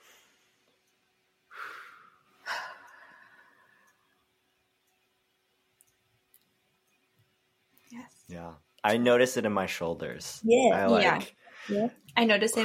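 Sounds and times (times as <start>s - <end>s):
person taking a deep breath: 1.5s - 4.0s
speech: 7.9s - 12.6s.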